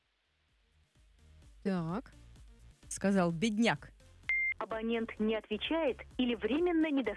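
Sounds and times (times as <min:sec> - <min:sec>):
speech: 0:01.7 - 0:02.2, 0:02.9 - 0:03.9, 0:04.7 - 0:07.1
touch-tone beeps dialing a telephone call: 0:04.3 - 0:04.6.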